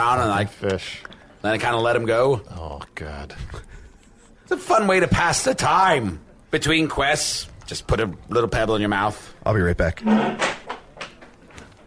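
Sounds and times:
speech: 0.0s - 3.8s, 4.5s - 10.5s
door being locked: 10.0s - 11.2s.

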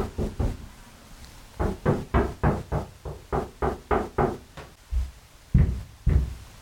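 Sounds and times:
knocking on a bedroom door: 0.0s - 0.6s, 1.6s - 6.4s
heavy thumps on a bedroom door: 1.6s - 6.4s.

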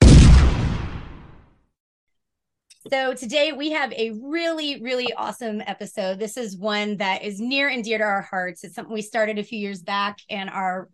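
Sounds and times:
cannon blast: 0.0s - 1.5s
speech: 2.9s - 10.9s.

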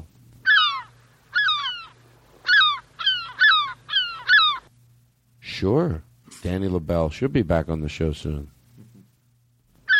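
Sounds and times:
faint steady low hum: 0.0s - 9.9s
loud harsh seagull calls: 0.4s - 4.7s
speech: 5.6s - 8.6s.

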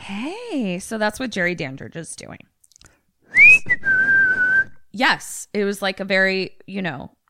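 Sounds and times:
speech: 0.1s - 2.5s, 4.9s - 7.2s
whistling through pursed lips: 3.3s - 4.8s.

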